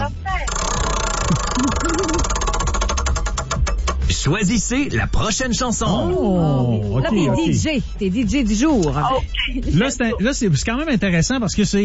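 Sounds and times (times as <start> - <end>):
prize wheel spun in a game-show contest ticking: 0.3 - 4.3
speech: 4.2 - 11.8.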